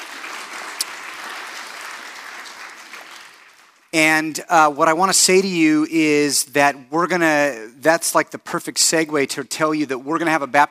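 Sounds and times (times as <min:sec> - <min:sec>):
congregation applauding: 0:00.0 - 0:04.0
speech: 0:03.9 - 0:10.6.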